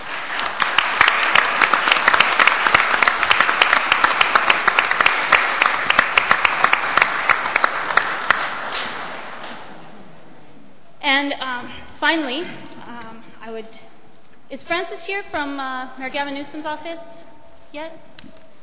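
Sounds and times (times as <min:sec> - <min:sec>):
audience applause: 0:00.0 - 0:09.6
sharp individual claps: 0:00.0 - 0:09.7
speech: 0:12.0 - 0:12.6, 0:14.5 - 0:18.1.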